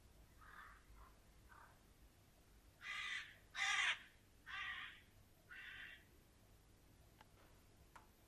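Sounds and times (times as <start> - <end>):
flock of crows cawing: 0.4 - 1.8, 2.8 - 6.1.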